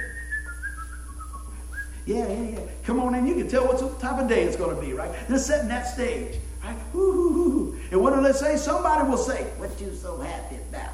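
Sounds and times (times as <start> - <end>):
person whistling a short wavering melody: 0.0 - 2.1
steady low hum: 0.0 - 10.9
speech: 2.1 - 10.9.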